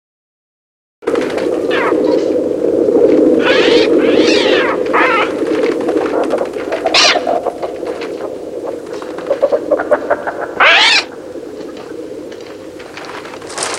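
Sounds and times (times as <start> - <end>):
constant low droning background: 1.0 - 13.7
birds chirping in a dense chorus: 3.4 - 5.4, 6.1 - 11.3.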